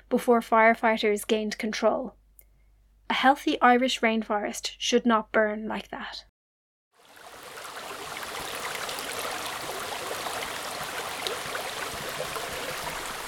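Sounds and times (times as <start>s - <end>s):
speech: 0.1s - 2.2s, 3.1s - 6.3s
stream water flowing through a wood: 7.0s - 13.2s.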